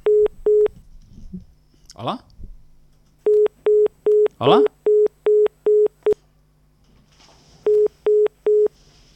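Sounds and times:
busy tone beeps from a dropped incoming phone call: 0:00.0 - 0:00.7, 0:03.3 - 0:06.2, 0:07.7 - 0:08.7
speech: 0:02.0 - 0:02.3, 0:04.4 - 0:04.7.

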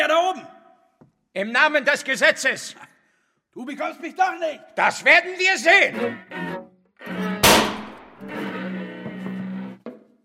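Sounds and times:
speech: 0:01.4 - 0:02.9, 0:03.6 - 0:07.2
gunshot during a tense confrontation: 0:07.4 - 0:08.2.

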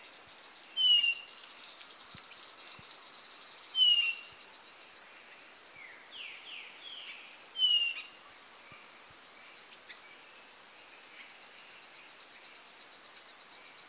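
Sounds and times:
insect noise: 0:00.0 - 0:13.8
Blue-naped chlorophonia (Chlorophonia cyanea) high whistled calls: 0:00.8 - 0:01.3, 0:03.7 - 0:04.3, 0:07.6 - 0:08.1.

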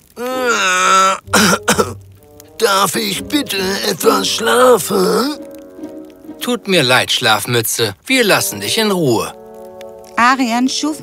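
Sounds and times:
short rough coughing bursts: 0:00.9 - 0:02.0
drawn-out voiced throat clearing: 0:01.3 - 0:02.0
speech: 0:02.6 - 0:05.5, 0:06.4 - 0:09.4, 0:10.2 - 0:11.0.

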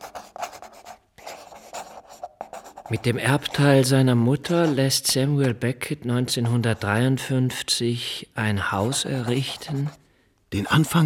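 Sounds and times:
person writing with scratchy strokes across a surface: 0:00.0 - 0:03.7, 0:08.8 - 0:10.0, 0:10.7 - 0:11.0
speech: 0:02.9 - 0:11.0.

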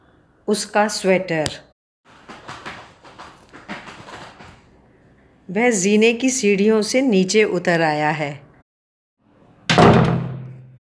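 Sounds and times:
speech: 0:00.5 - 0:01.7, 0:05.5 - 0:08.4
kitchen door slamming shut: 0:09.7 - 0:10.8.

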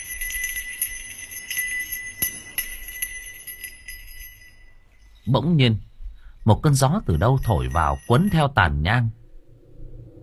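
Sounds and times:
small hand bell shaken during ritual prayers with incense: 0:00.0 - 0:05.4, 0:06.3 - 0:08.8
speech: 0:05.3 - 0:09.2.

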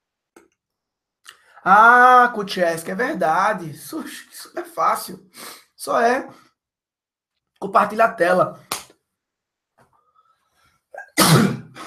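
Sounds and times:
speech: 0:01.6 - 0:06.5, 0:07.6 - 0:08.7
person sneezing: 0:11.0 - 0:11.8.

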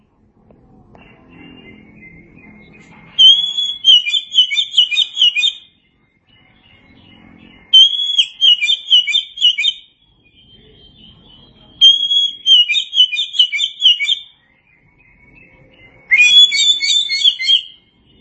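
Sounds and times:
Oriental magpie-robin singing bright whistled phrases and chirps: 0:00.9 - 0:18.2.

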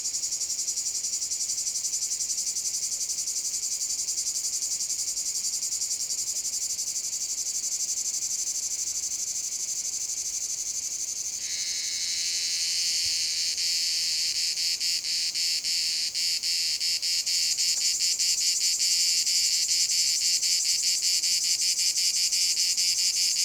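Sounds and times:
cicada chorus in a field in France: 0:00.0 - 0:23.4.

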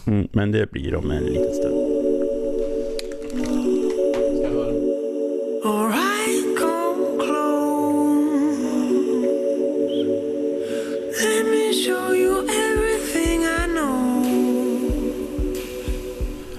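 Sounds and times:
speech: 0:00.1 - 0:01.8, 0:03.3 - 0:03.8
mellow pop song with vocals and synth chords: 0:01.0 - 0:16.5.

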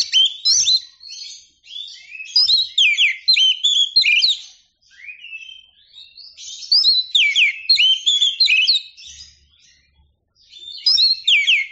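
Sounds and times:
Oriental magpie-robin delivering rapid sweeping whistles and chattering notes: 0:00.0 - 0:09.4, 0:10.5 - 0:11.7.

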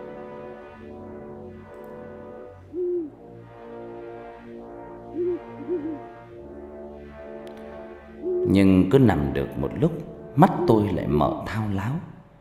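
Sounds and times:
owl hooting in the dark night: 0:02.7 - 0:03.2, 0:05.2 - 0:06.2, 0:08.2 - 0:08.6
speech: 0:08.5 - 0:12.2.

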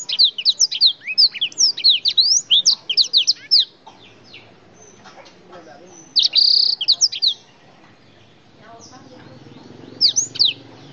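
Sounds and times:
Oriental magpie-robin singing: 0:00.0 - 0:10.9.

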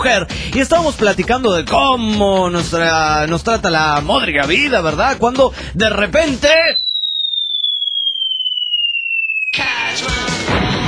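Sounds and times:
speech: 0:00.0 - 0:06.8
descending whistle for a man falling from the sky: 0:06.6 - 0:10.5.

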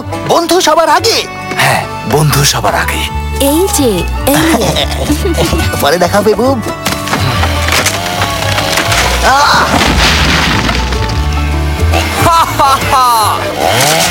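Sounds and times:
speech: 0:00.3 - 0:06.9, 0:09.2 - 0:09.9, 0:12.0 - 0:14.0
laughter: 0:04.3 - 0:06.0, 0:11.9 - 0:13.8
wood creaking, cracking and splintering as a tree is cut down: 0:06.7 - 0:12.2.

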